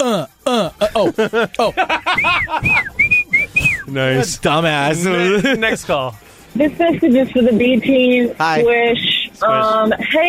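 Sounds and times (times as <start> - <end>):
laughter: 0.0 - 6.1
quick rhythmic voiced bursts like chuckling: 0.0 - 10.2
speech: 0.1 - 2.8, 3.9 - 10.2
person whistling short clear notes: 2.2 - 3.9.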